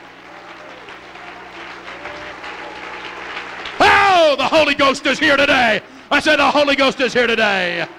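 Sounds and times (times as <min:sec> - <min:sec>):
church audience clapping hands in praise: 0:00.0 - 0:04.9
speech: 0:04.3 - 0:07.9.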